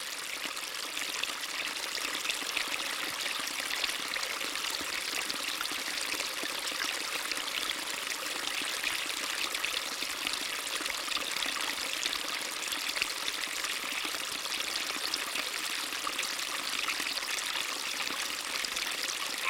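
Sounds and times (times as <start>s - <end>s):
creek flowing: 0.0s - 19.4s
frog calling: 19.2s - 19.4s.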